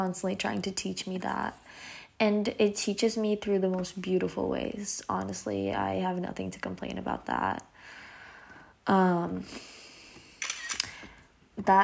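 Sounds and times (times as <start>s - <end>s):
speech: 0.0s - 7.7s, 8.8s - 9.8s, 11.6s - 11.8s
computer camera-shutter effect from taking a screenshot: 10.4s - 11.0s.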